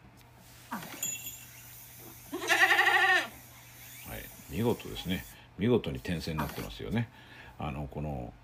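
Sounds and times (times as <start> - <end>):
goat bleating: 2.3 - 3.4
speech: 4.6 - 8.4.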